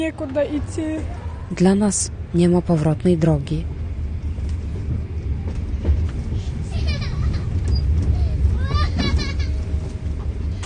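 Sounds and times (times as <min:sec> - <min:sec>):
speech: 0:00.0 - 0:03.8
moving passenger train carriage rumbling: 0:00.0 - 0:10.6.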